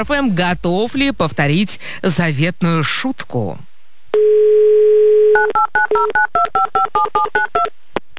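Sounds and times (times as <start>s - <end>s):
speech: 0.0s - 4.5s, 5.4s - 7.8s
steady phone dial tone: 4.2s - 7.7s
touch-tone keypad beeps dialing a phone number: 5.4s - 7.7s.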